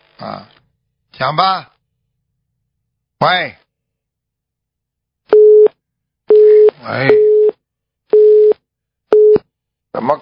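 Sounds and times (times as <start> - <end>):
speech: 0.2 - 0.6, 1.2 - 1.7, 3.2 - 3.6, 6.8 - 7.2, 10.0 - 10.2
telephone busy signal after a call is cut off: 5.3 - 5.7, 6.3 - 7.5, 8.2 - 9.4.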